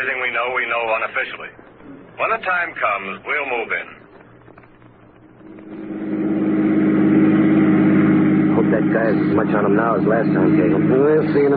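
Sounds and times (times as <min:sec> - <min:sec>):
speech: 0:00.0 - 0:04.0, 0:08.9 - 0:11.5
car engine revving up and accelerating: 0:05.4 - 0:11.5.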